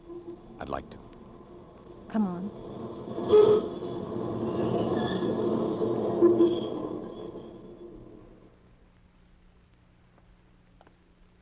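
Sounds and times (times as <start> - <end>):
faint metallic squeals of subway wheels on rails: 0.0 - 8.6
subway train rumbling: 0.0 - 8.7
speech: 0.6 - 1.2, 2.1 - 3.8.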